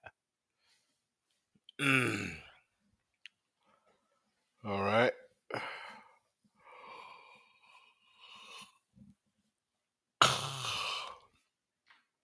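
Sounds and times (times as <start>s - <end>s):
drawn-out human yawn: 1.8s - 2.5s, 10.2s - 11.3s.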